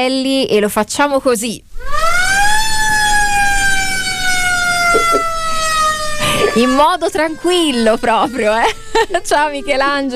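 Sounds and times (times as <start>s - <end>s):
speech: 0.0s - 2.2s, 6.6s - 10.1s
police car siren wailing: 1.8s - 10.1s
laughter: 4.9s - 5.3s, 6.2s - 6.8s, 8.2s - 9.5s.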